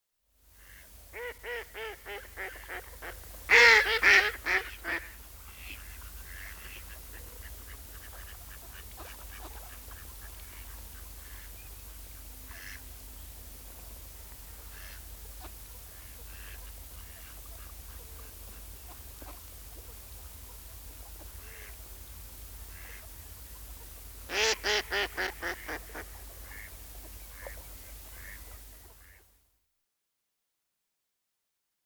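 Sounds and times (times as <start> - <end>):
mallard birdsong: 0.6 - 11.6, 12.5 - 12.8, 21.2 - 21.8, 22.7 - 23.1, 24.3 - 29.2.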